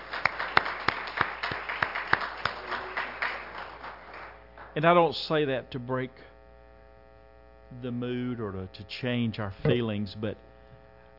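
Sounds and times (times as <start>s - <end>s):
sharp rhythmic claps: 0.0s - 4.9s
speech: 4.8s - 6.3s, 7.7s - 10.5s.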